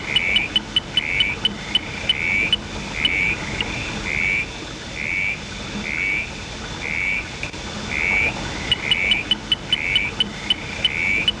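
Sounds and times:
Northern tinkerfrog calling: 0.0s - 11.3s
low background hiss: 0.0s - 11.3s.

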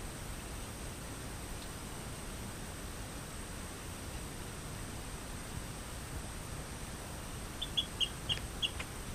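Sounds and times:
steady hiss: 0.0s - 9.1s
Rio Grande chirping frog Eleutherodactylus cystignathoides chirping: 7.6s - 8.8s.

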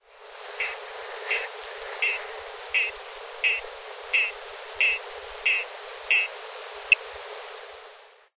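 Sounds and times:
Boophis laurenti frog calling: 2.0s - 6.3s.

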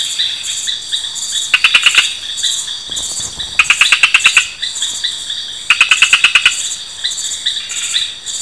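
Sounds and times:
dense insect chorus: 0.0s - 8.4s
Madagascar frog Gephyromantis salegy giving rapid clicking pulses: 1.5s - 2.2s, 3.5s - 4.6s, 5.7s - 6.6s.

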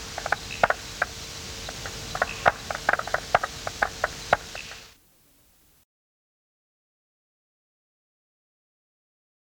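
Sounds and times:
Striped marsh frog Limnodynastes peronii calls: 0.0s - 5.0s
steady hum: 0.0s - 5.8s.

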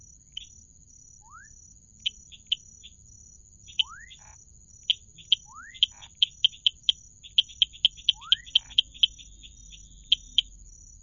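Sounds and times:
low background hum: 0.0s - 11.0s
Dendropsophus rubicundulus tree frog calling with short sharp high clicks: 2.0s - 3.0s, 3.7s - 10.6s.

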